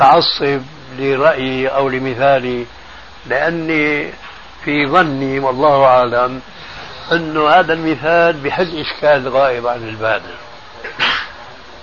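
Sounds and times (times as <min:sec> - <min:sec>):
speech: 0:00.0 - 0:10.4
person sneezing: 0:10.8 - 0:11.4.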